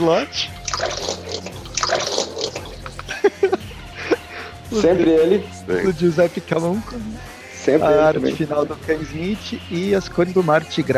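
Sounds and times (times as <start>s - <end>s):
speech: 0.0s - 2.3s, 4.7s - 10.9s
water running from a tap: 0.5s - 3.2s
laughter: 2.6s - 5.2s.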